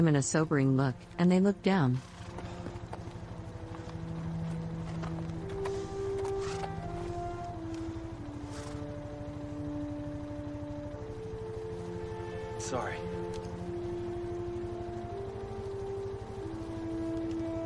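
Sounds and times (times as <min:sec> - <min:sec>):
speech: 0:00.0 - 0:02.2
low hum with sustained tones: 0:00.0 - 0:17.6
horse hooves clip-clop as it is led away from a building: 0:02.0 - 0:09.5, 0:16.9 - 0:17.6.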